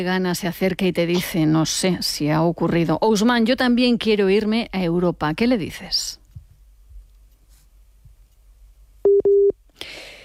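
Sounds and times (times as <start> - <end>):
speech: 0.0 - 6.2
phone busy tone beeps after a dropped call: 9.0 - 9.6.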